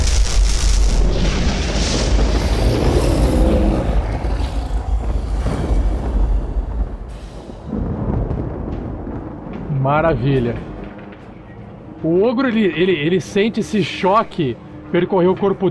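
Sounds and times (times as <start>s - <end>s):
loud thunder crash from a lightning strike: 0.0s - 11.6s
speech: 9.9s - 10.7s, 12.0s - 15.6s.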